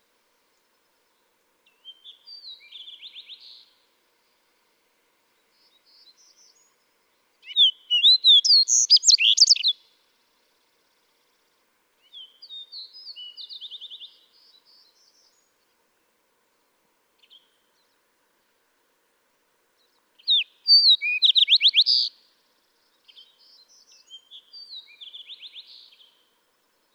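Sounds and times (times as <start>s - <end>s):
Fox Sparrow song: 0.0s - 16.2s, 17.2s - 18.2s, 19.7s - 26.9s.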